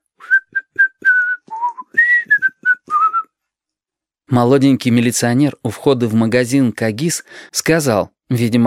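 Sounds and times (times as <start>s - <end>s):
boy whistling a tune clumsily: 0.2s - 3.4s
speech: 4.3s - 8.6s.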